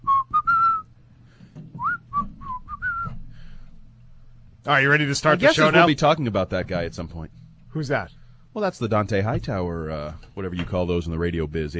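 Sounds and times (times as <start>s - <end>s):
person whistling a short wandering tune: 0.0s - 0.9s, 1.8s - 3.2s
speech: 4.7s - 11.7s.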